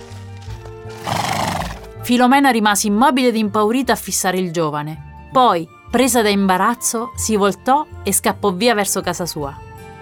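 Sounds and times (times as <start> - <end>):
white horse neighing: 1.0 - 1.9
speech: 2.1 - 9.7.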